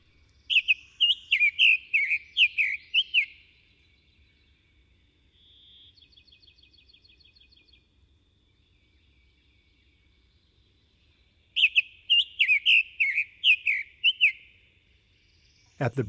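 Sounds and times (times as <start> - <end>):
summer tanager singing burry warbled phrases: 0.4 - 3.4, 11.6 - 14.4, 15.7 - 16.0
faint high insect-like trill: 0.4 - 12.4
speech: 15.8 - 16.0.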